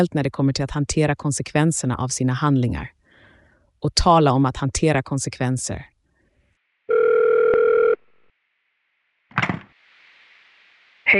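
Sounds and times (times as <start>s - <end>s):
speech: 0.0s - 3.0s, 3.8s - 5.9s
electronic telephone tone of a caller ringing in: 6.9s - 8.0s.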